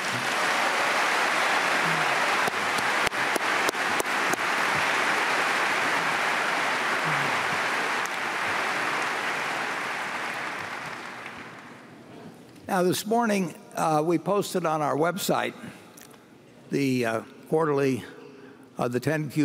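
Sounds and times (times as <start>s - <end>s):
large crowd applauding: 0.0s - 12.0s
speech: 12.8s - 15.8s, 16.7s - 18.2s, 18.8s - 19.4s.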